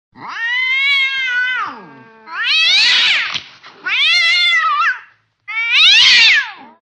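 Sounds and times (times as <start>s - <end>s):
cats fighting: 0.2s - 6.8s.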